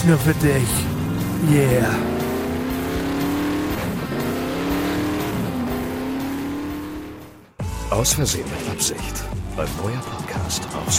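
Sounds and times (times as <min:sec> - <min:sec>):
speech: 0:00.0 - 0:02.2, 0:07.9 - 0:10.9
fast car engine revving through gear changes: 0:00.0 - 0:07.6.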